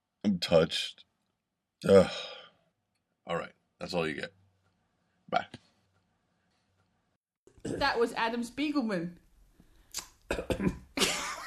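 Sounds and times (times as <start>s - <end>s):
speech: 0.4s - 1.0s, 1.8s - 2.3s, 3.3s - 4.4s, 5.3s - 5.6s, 7.6s - 9.2s, 10.3s - 11.1s
man clearing his throat: 10.3s - 10.9s
man coughing: 10.3s - 11.3s.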